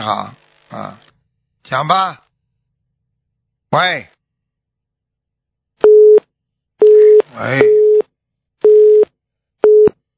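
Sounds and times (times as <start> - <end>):
speech: 0.0 - 1.1, 1.7 - 2.2, 3.7 - 4.2, 7.3 - 7.8
telephone busy tone after a call is cut off: 5.8 - 6.2, 6.8 - 8.0, 8.6 - 10.0.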